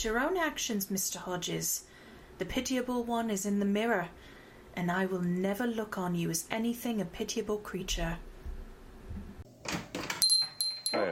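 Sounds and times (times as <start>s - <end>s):
speech: 0.0s - 8.3s, 10.9s - 11.1s
door clunking and rattling open: 9.2s - 10.3s
bright metallic jingles: 10.2s - 11.1s.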